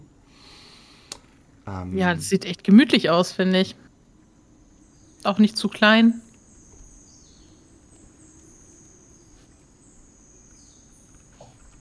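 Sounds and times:
speech: 1.7s - 3.8s, 5.2s - 6.2s
birds chirping in nature by a hut: 1.7s - 11.7s.

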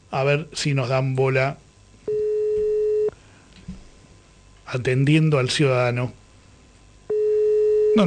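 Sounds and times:
speech: 0.1s - 1.6s, 4.7s - 6.2s
telephone tone on an unanswered call to a police station: 2.1s - 3.1s, 7.1s - 8.0s.

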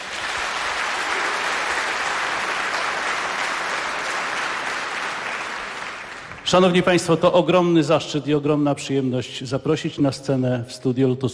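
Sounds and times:
studio audience applause at a radio concert event: 0.0s - 7.0s
speech: 6.5s - 11.3s.

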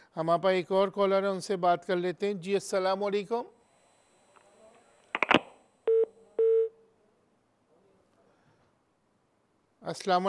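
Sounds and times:
speech: 0.2s - 3.6s, 9.9s - 10.2s
steady mid-pitched telephone tones after a dropped call: 3.6s - 6.8s
telephone dialing beeps after a dropped call: 5.9s - 6.7s.

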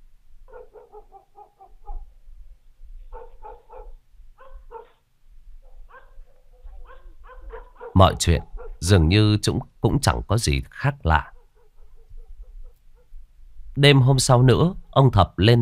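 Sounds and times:
dog barking at night: 0.5s - 2.1s, 3.1s - 5.0s, 5.6s - 8.9s, 11.3s - 13.2s
speech: 8.0s - 11.3s, 13.8s - 15.5s.

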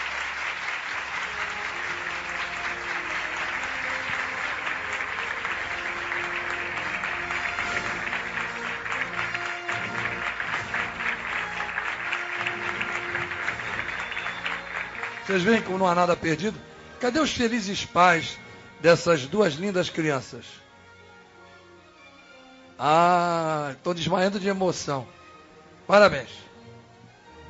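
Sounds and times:
audience applause at a religious gathering in Brazil: 0.0s - 16.4s
speech: 15.3s - 20.6s, 22.8s - 25.2s, 25.9s - 26.5s.

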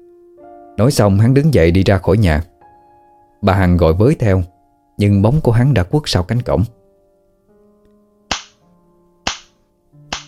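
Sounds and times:
speech: 0.8s - 2.5s, 3.4s - 6.8s
sharp loud slaps in a rented room: 8.3s - 8.6s, 9.3s - 10.2s.

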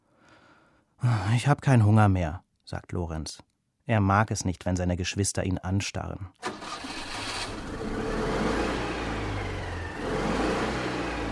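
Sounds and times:
speech: 1.1s - 6.9s
car engine accelerating: 6.5s - 11.3s.

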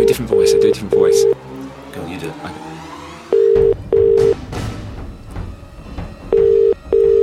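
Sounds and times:
telephone ringback tone while calling: 0.0s - 1.4s, 3.4s - 4.4s, 6.3s - 7.2s
speech: 0.0s - 2.8s.

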